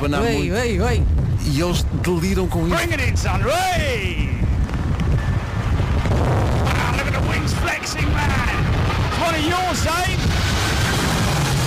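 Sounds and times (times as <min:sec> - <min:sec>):
speech: 0:00.0 - 0:04.5, 0:07.4 - 0:10.6
heavy storm wind buffeting the microphone in London: 0:00.0 - 0:11.6.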